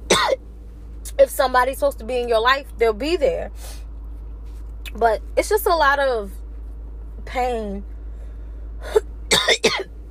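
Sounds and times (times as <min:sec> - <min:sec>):
person coughing: 0:00.1 - 0:00.4, 0:08.9 - 0:09.9
speech: 0:01.1 - 0:03.8, 0:04.9 - 0:06.4, 0:07.3 - 0:07.9, 0:08.8 - 0:09.9.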